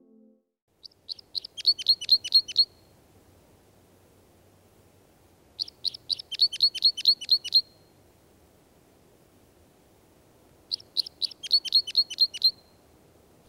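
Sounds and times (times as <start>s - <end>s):
Red Crossbill calls: 0.9s - 2.7s, 5.6s - 7.7s, 10.7s - 12.6s.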